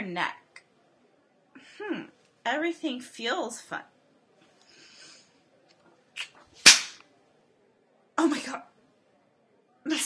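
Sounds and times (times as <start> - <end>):
speech: 0.2 - 0.4, 2.4 - 3.9, 8.2 - 8.7
sharp loud slap across the face: 6.2 - 7.0.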